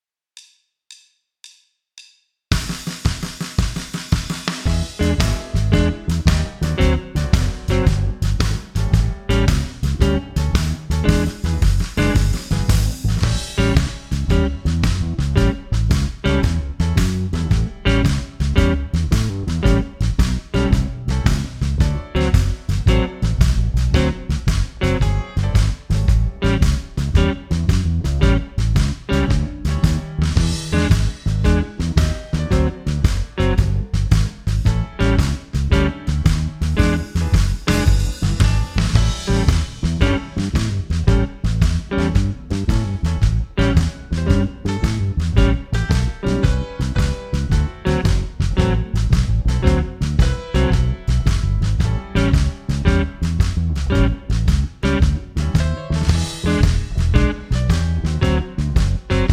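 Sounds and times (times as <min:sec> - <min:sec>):
shuffle comping pattern rhythm: 0:02.5 - 0:59.3.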